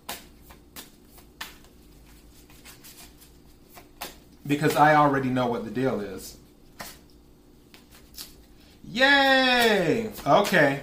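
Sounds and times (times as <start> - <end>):
tarot cards being shuffled, riffling and sliding: 0.1 - 4.8, 6.7 - 8.6
speech: 4.5 - 6.4, 9.0 - 10.8.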